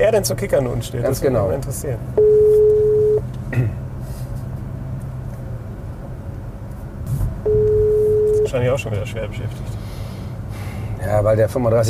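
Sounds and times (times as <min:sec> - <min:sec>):
speech: 0:00.0 - 0:02.4, 0:03.5 - 0:03.8, 0:08.5 - 0:10.0, 0:11.0 - 0:11.8
low constant hum: 0:00.0 - 0:11.8
telephone ringback tone of an outgoing call: 0:02.2 - 0:03.2, 0:07.5 - 0:08.5.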